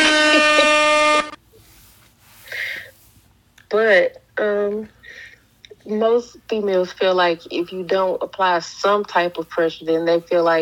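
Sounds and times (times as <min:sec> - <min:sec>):
air horn blast: 0:00.0 - 0:01.4
short honk-like burst: 0:00.0 - 0:01.4
speech: 0:03.7 - 0:05.0, 0:05.8 - 0:10.6.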